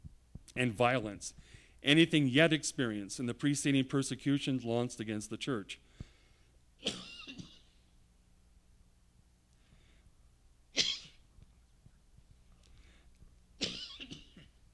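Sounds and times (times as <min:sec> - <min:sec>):
faint low hum: 0:00.0 - 0:14.7
speech: 0:00.6 - 0:05.9, 0:06.8 - 0:07.0
person coughing during a sermon: 0:06.8 - 0:07.8, 0:10.8 - 0:11.2, 0:13.6 - 0:14.6.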